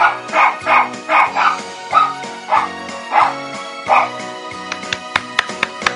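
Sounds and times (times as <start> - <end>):
pet dog barking along to a festive sing-along tune: 0.0 - 4.2.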